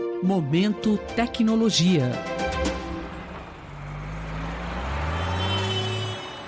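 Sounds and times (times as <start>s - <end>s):
speech: 0.2s - 2.5s
large trucks passing on a highway: 0.8s - 6.4s
heavy highway traffic rumbling: 1.3s - 6.4s.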